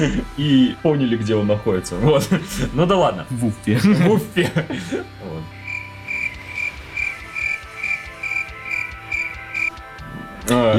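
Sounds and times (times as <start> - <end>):
speech: 0.0 - 5.6, 10.5 - 10.7
laughter: 2.0 - 2.9, 3.6 - 5.5
crickets chirping: 5.6 - 9.8.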